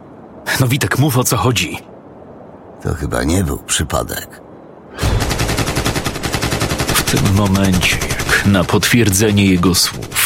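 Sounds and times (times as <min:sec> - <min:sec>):
speech: 0:00.5 - 0:01.9, 0:02.8 - 0:04.4, 0:07.1 - 0:10.2
sustained burst of automatic gunfire: 0:05.0 - 0:10.2.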